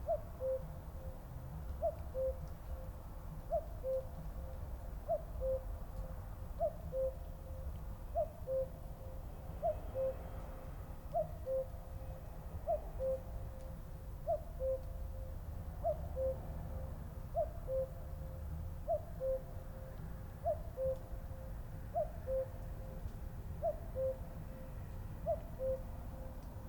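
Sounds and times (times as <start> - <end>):
cuckoo calling a two-note cu-coo: 0.0 - 1.2, 1.8 - 10.2, 11.1 - 26.5.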